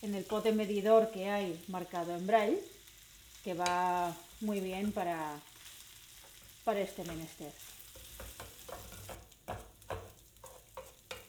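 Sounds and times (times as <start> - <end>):
speech: 0.0 - 2.8, 3.4 - 5.5, 6.6 - 7.7
frying hiss: 0.0 - 11.2
spoon stirring pork ribs with sofrito, mushrooms and rice in a pan: 3.6 - 11.2.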